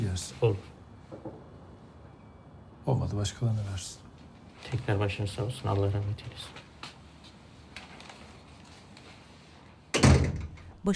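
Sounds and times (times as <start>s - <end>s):
speech: 0.2s - 0.7s, 2.9s - 4.0s, 4.6s - 6.7s
door shutting with a solid thud and rattling resonance: 9.9s - 10.7s.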